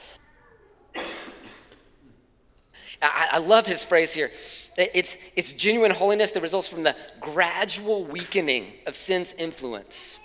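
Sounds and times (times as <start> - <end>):
sharp cough: 0.9 - 2.0
speech: 3.0 - 10.2.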